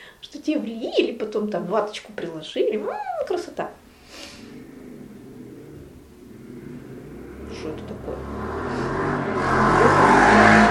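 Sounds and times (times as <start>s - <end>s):
speech: 0.2s - 3.8s
motorcycle engine revving as it passes by: 3.7s - 10.7s.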